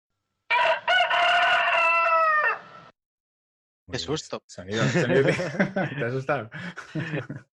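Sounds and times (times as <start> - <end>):
rooster crowing: 0.5 - 2.9
speech: 3.9 - 7.5
laughter: 4.7 - 7.5.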